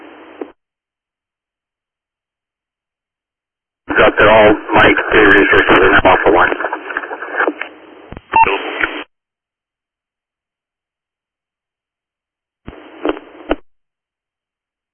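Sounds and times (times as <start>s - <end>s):
narrowband dispatch radio transmission with crackly static: 3.9s - 9.1s, 12.7s - 13.6s
speech: 4.0s - 6.7s.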